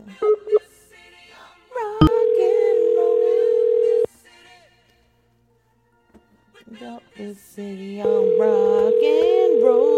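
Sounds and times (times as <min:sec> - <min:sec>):
telephone dial tone before a prank call: 0:02.0 - 0:04.1, 0:08.1 - 0:09.9
speech: 0:07.2 - 0:09.9.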